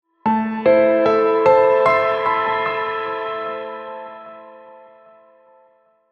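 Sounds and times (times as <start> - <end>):
dreamy piano piece: 0.1 - 6.1.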